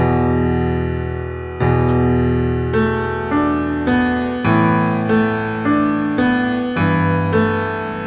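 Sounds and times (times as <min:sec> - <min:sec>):
piano playing a left-hand E power chord with pedal under right-hand notes: 0:00.0 - 0:08.0.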